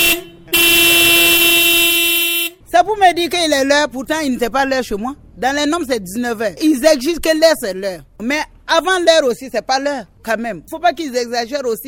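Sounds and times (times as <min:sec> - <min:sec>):
vehicle horn honking: 0:00.0 - 0:02.6
speech: 0:02.8 - 0:11.8.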